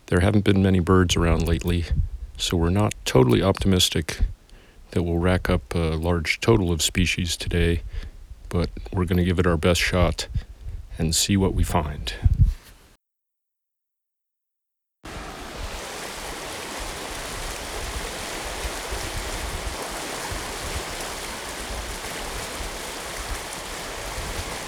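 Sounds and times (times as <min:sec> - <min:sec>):
speech: 0:00.1 - 0:12.5
flooded desert wash flowing after heavy overnight rain: 0:15.1 - 0:24.6.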